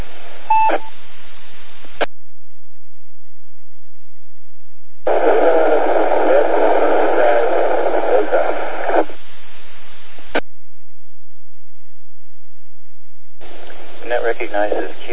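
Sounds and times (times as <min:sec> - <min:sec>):
two amateur radio stations transmitting at once on the same frequency: 0:00.0 - 0:01.0, 0:05.1 - 0:10.4, 0:13.4 - 0:15.1.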